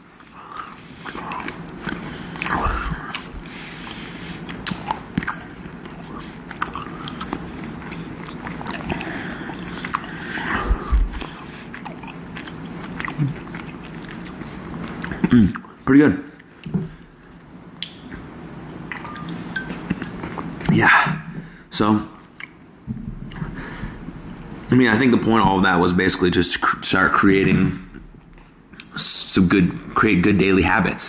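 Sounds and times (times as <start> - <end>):
wet chewing of a snack treat: 0.5 - 15.8
speech: 15.3 - 16.2, 21.8 - 22.1, 24.7 - 27.9, 29.4 - 31.0.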